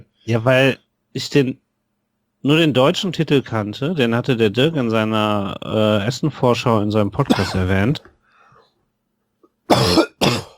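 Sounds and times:
speech: 0:00.3 - 0:01.6, 0:02.4 - 0:08.1
harsh coughs: 0:07.2 - 0:07.8, 0:09.7 - 0:10.5.

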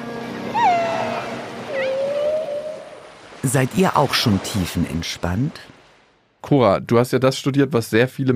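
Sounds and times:
whale and dolphin underwater vocalizations: 0:00.4 - 0:03.2
speech: 0:03.4 - 0:05.7, 0:06.4 - 0:08.3.

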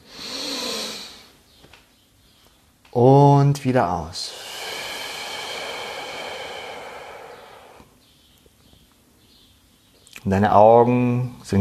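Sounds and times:
slow deep inhale through the nose: 0:00.0 - 0:01.3, 0:04.2 - 0:08.0
speech: 0:02.9 - 0:04.4, 0:10.2 - 0:11.6.

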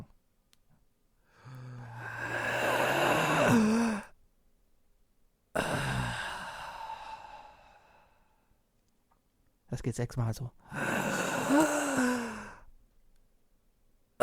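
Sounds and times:
deep rhythmic breathing in unison: 0:01.2 - 0:04.1, 0:05.6 - 0:08.6, 0:10.6 - 0:12.7
speech: 0:09.8 - 0:10.8.

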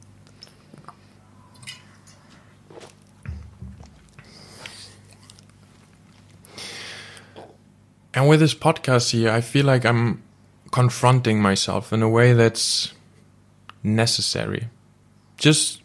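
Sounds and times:
soft mouth and swallowing noises: 0:00.2 - 0:01.6, 0:02.2 - 0:07.6
person sipping a drink: 0:00.2 - 0:07.6
brief low thump of a cup: 0:03.3 - 0:04.0
speech: 0:08.2 - 0:13.0, 0:13.8 - 0:14.8, 0:15.4 - 0:15.8.

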